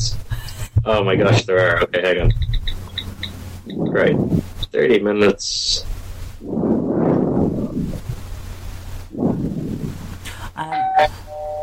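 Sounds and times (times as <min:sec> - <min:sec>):
speech: 0:00.0 - 0:02.5, 0:03.7 - 0:06.7, 0:10.6 - 0:11.2
low rumbling noise: 0:00.0 - 0:11.6
electronic doorbell chime alarm tone from a small phone speaker: 0:10.8 - 0:11.6.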